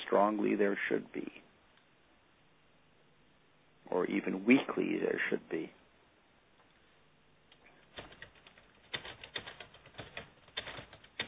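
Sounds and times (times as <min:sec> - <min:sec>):
speech: 0:00.1 - 0:01.5, 0:03.9 - 0:05.8
keyboard typing: 0:07.5 - 0:11.2.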